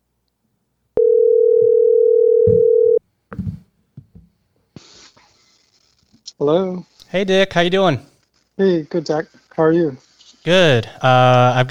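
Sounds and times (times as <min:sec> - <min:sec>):
telephone dial tone while placing a call: 0:01.0 - 0:03.0
brief burst of hiss: 0:04.8 - 0:05.8
speech: 0:06.4 - 0:11.6.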